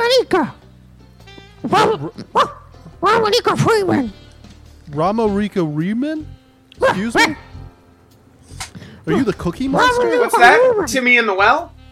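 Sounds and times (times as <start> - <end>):
speech: 0.2 - 0.6, 1.6 - 4.2, 4.9 - 7.5, 9.0 - 11.8
dog barking in short high yips and whiny barks: 1.6 - 4.2, 6.8 - 7.7, 9.1 - 10.9.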